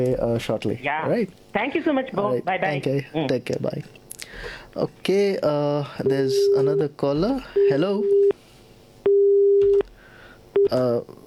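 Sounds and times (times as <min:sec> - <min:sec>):
speech: 0:00.0 - 0:08.4, 0:10.7 - 0:11.2
telephone busy signal after a caller's line dropped: 0:07.6 - 0:08.3, 0:09.1 - 0:09.9.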